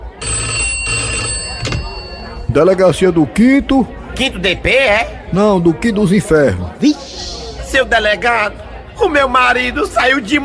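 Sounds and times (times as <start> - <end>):
telephone bell ringing with a metallic jangle: 0.1 - 2.5
speech: 2.6 - 10.4.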